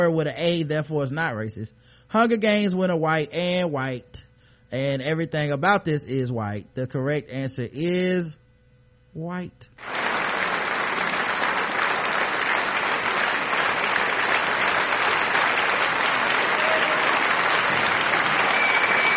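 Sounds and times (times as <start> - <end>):
speech: 0.0 - 8.4, 9.2 - 10.0
crowd clapping and cheering: 9.8 - 19.1.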